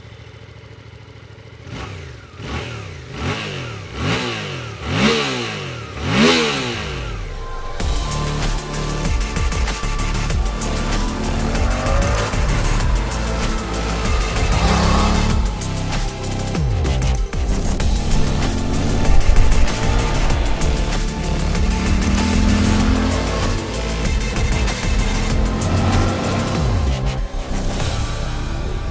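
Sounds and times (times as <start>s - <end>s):
motorcycle with clip-on handlebars starting and revving: 0.0s - 28.8s.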